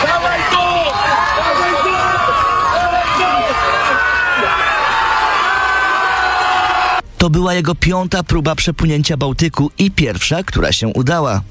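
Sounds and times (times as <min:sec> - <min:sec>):
large outdoor crowd cheering and shouting on a beach: 0:00.0 - 0:07.0
speech: 0:07.2 - 0:11.4.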